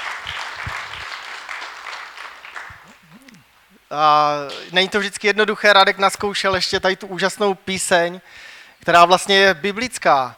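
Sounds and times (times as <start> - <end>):
crowd applauding musicians: 0.0 - 3.4
low murmurs: 0.0 - 4.4
speech: 3.9 - 10.3.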